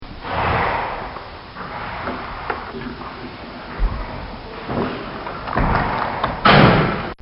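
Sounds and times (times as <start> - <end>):
ambience inside a stable: 0.0 - 7.2.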